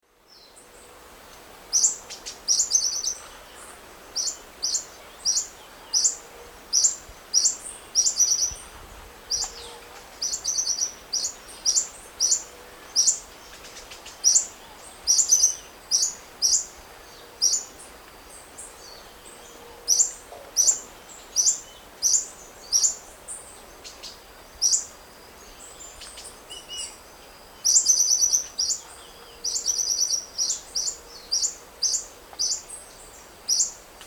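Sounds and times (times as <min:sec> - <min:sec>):
Leucippus chlorocercus song and calls in S. America Eastern Lowlands: 0:00.2 - 0:08.7, 0:09.3 - 0:33.9.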